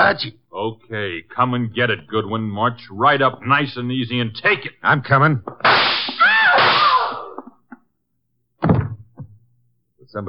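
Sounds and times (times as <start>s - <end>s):
speech: 0.1s - 5.9s, 10.1s - 10.2s
staged gunshot sound effect: 5.6s - 7.3s.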